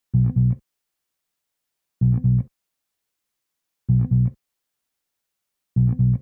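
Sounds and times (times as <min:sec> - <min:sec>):
bass break: 0:00.2 - 0:00.6, 0:02.1 - 0:02.4, 0:03.9 - 0:04.3, 0:05.8 - 0:06.2.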